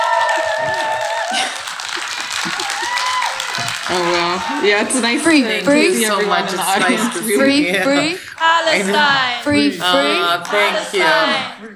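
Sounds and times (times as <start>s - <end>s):
whoops and high shouts from a crowd: 0.0s - 1.4s, 2.6s - 3.6s
crowd of 80 to 90 people outdoors clapping and cheering: 0.0s - 5.9s, 7.0s - 11.6s
laughter: 0.4s - 11.7s
scattered voices: 3.9s - 11.7s
speech: 3.9s - 11.7s.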